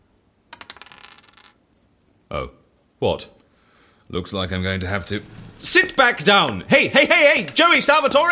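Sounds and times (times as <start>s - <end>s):
dice rolling across a hard tabletop: 0.5s - 1.6s
speech: 2.3s - 3.4s, 4.1s - 8.2s.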